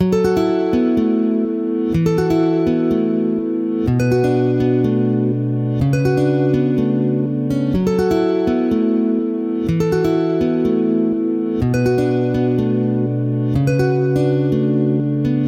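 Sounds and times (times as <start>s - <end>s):
looped guitar melodies: 0.0s - 15.4s.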